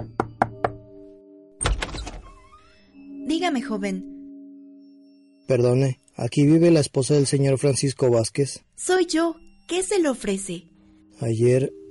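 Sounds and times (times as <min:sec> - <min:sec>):
firm knocking on a door: 0:00.0 - 0:00.8
speech: 0:03.3 - 0:04.1, 0:05.5 - 0:11.8.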